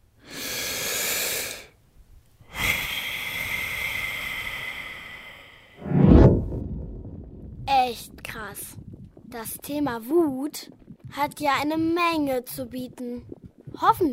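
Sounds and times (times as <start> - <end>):
slow breathing in and out: 0.2 - 1.8, 2.4 - 7.6
speech: 7.9 - 14.1.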